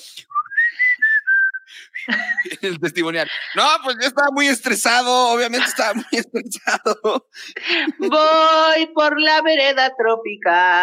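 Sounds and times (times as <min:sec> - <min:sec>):
person whistling a tune: 0:00.3 - 0:02.5
laughter: 0:02.0 - 0:04.1, 0:05.0 - 0:08.4
speech: 0:02.1 - 0:10.8.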